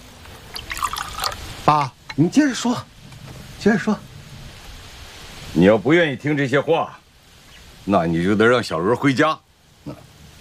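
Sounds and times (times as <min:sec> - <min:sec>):
water poured into a glass: 0:00.5 - 0:01.5
speech: 0:01.6 - 0:02.9, 0:03.6 - 0:04.1, 0:05.5 - 0:07.0, 0:07.8 - 0:10.1.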